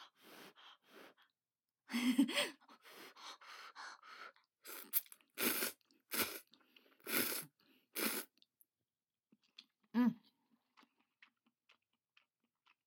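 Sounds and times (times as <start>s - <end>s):
miso-flavoured instant bagged noodles being slurped: 4.7s - 8.3s.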